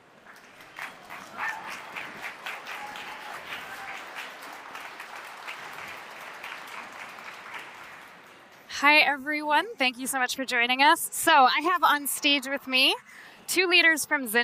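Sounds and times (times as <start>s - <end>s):
audience applauding welcoming guests onto a stage: 0.0s - 8.7s
faint whoops from the audience: 1.1s - 4.3s
speech: 8.8s - 14.4s.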